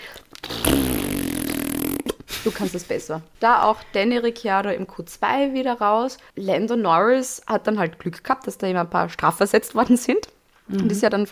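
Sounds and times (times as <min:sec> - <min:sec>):
voice imitating a feeble sputtering fart: 0:00.4 - 0:02.4
speech: 0:02.4 - 0:11.2.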